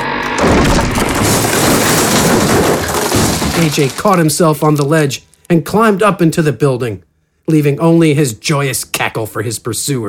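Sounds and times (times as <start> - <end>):
bridge collapsing and crashing into street: 0.4 - 5.0
rumbling shattering debris tumbling down from a collapsing bridge: 0.4 - 5.1
speech: 3.6 - 10.0.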